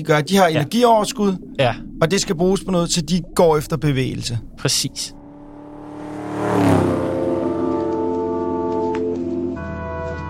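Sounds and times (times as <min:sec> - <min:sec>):
speech: 0:00.0 - 0:05.2
car engine revving and accelerating: 0:01.3 - 0:09.4.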